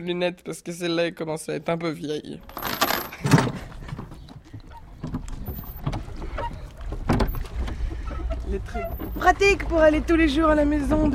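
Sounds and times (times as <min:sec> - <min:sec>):
speech: 0:00.0 - 0:02.8, 0:08.7 - 0:11.1
wooden creak and knock of a small boat: 0:02.4 - 0:11.1
oars dipping and splashing through water: 0:03.5 - 0:11.1.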